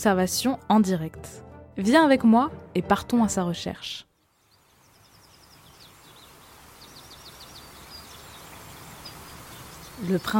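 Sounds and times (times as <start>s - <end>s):
speech: 0.0s - 4.1s, 10.0s - 10.3s
small birds trilling and chirping faintly at a distance: 4.1s - 10.3s
low wash of water and wind in a reed bed by a pond: 4.7s - 10.3s.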